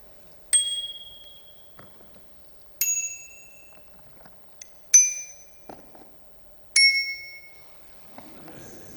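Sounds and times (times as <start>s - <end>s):
low-pitched bicycle bell ringing: 0.5s - 1.9s, 2.8s - 4.0s, 5.0s - 5.7s, 6.8s - 7.7s.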